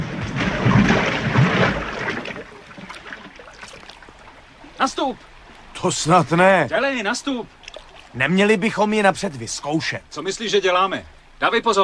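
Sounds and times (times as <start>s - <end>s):
splashing and sloshing of 6 metre boat lowered into water: 0.0s - 11.4s
speech: 4.8s - 11.8s.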